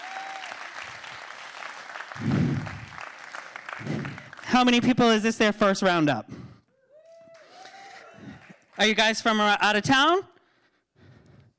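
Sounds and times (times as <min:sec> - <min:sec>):
crowd cheering: 0:00.0 - 0:04.5, 0:06.8 - 0:08.9
audience applause in a room: 0:00.0 - 0:04.6, 0:07.2 - 0:08.9
speech: 0:02.2 - 0:02.8, 0:04.5 - 0:06.4, 0:08.8 - 0:10.3.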